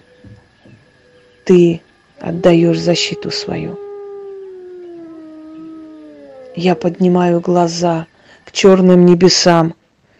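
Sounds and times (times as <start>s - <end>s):
speech: 1.5s - 3.8s, 6.6s - 9.8s
wolf howling: 2.2s - 7.9s.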